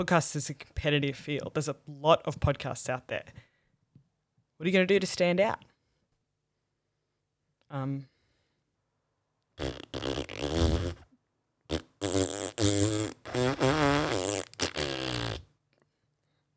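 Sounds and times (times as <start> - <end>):
speech: 0.0 - 3.5, 4.6 - 5.7, 7.7 - 8.1, 9.6 - 11.0
sputtering fart: 9.6 - 11.1, 11.7 - 15.5.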